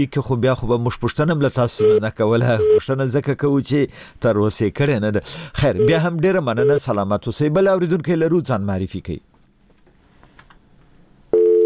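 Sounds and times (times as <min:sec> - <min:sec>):
speech: 0:00.0 - 0:09.3
telephone busy tone after a call disconnects: 0:06.6 - 0:06.8, 0:11.3 - 0:11.6.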